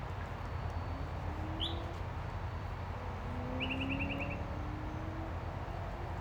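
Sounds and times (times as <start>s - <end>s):
yellow-breasted chat calling: 0.1s - 6.1s.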